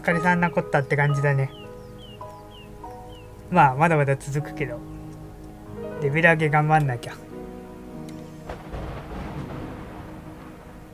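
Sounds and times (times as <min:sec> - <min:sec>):
speech: 0:00.0 - 0:01.6, 0:03.5 - 0:04.9, 0:06.0 - 0:07.3
steady video game music: 0:00.0 - 0:10.9
video game dense rolling thunder rumble: 0:08.4 - 0:10.9
video game lightning strike crack: 0:08.4 - 0:10.9.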